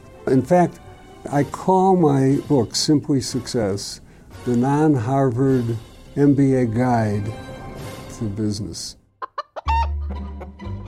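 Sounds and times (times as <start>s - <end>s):
speech: 0.3s - 7.5s, 8.2s - 9.0s
chickens clucking and squawking in a chicken store: 9.2s - 10.6s.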